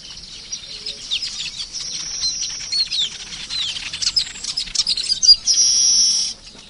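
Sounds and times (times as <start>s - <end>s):
birds chirping: 0.0s - 6.6s.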